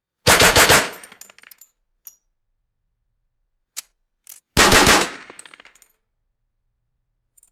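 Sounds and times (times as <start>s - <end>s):
short assault rifle burst indoors: 0.3s - 1.2s, 4.6s - 5.7s
falling shell casings: 0.6s - 2.2s, 3.8s - 6.0s.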